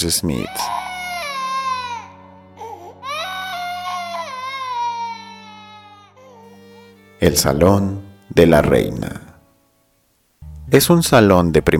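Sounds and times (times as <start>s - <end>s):
speech: 0.0s - 0.9s, 7.2s - 9.2s, 10.7s - 11.7s
infant wailing: 0.3s - 7.0s.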